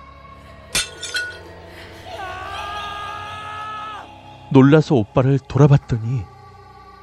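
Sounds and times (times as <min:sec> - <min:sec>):
ceramic jar crashing and shattering: 0:00.8 - 0:01.5
sustained high-pitched scream: 0:02.0 - 0:04.3
speech: 0:04.5 - 0:06.3.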